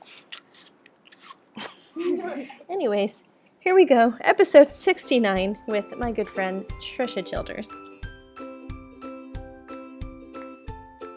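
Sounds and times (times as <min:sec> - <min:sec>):
crunchy chewing of apple: 0:00.3 - 0:01.4
speech: 0:02.2 - 0:07.9.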